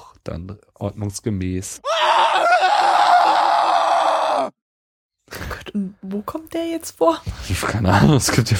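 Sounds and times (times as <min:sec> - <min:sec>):
speech: 0:00.2 - 0:02.4, 0:05.7 - 0:08.5
man screaming: 0:01.8 - 0:04.6.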